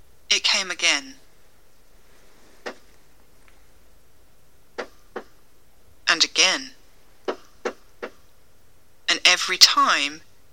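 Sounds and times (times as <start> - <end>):
speech: 0.6 - 1.2, 6.5 - 6.8, 9.4 - 10.3
knocking: 4.8 - 5.4.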